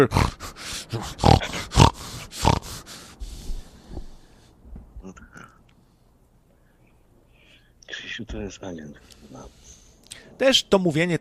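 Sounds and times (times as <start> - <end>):
speech: 0.0 - 1.4, 8.2 - 9.6, 10.4 - 11.1
man with a nervous tic making pig-like snorting grunts: 0.0 - 2.9
man snuffling and making throaty sounds: 0.4 - 4.4.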